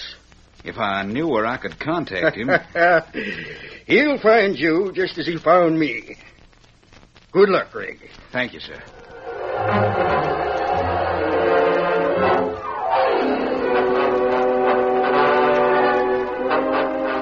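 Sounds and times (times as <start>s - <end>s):
speech: 0.6s - 6.3s, 7.3s - 9.0s, 9.6s - 10.2s
company train rumbling along: 9.1s - 17.2s.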